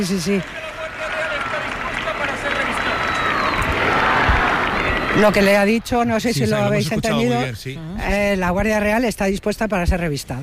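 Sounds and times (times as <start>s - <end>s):
speech: 0.0s - 0.6s, 5.2s - 10.4s
large audience applauding: 0.0s - 7.1s.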